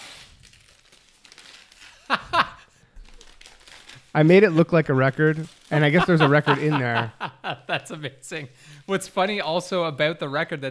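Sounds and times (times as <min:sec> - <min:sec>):
wrapping paper tearing: 0:00.0 - 0:02.1, 0:03.1 - 0:07.0
Christmas wrapping paper rustling as a gift is unwrapped: 0:00.0 - 0:07.1
laughter: 0:02.1 - 0:02.6, 0:05.8 - 0:08.2
speech: 0:04.2 - 0:10.7.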